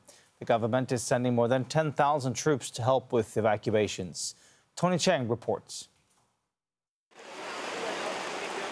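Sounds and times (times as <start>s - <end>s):
speech: 0.4s - 5.9s
heavy rain downpour: 7.2s - 8.7s.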